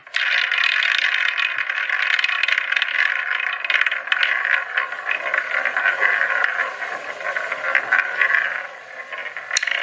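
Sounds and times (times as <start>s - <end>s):
quiz wheel spinning with rattling and scraping: 0.0s - 9.8s.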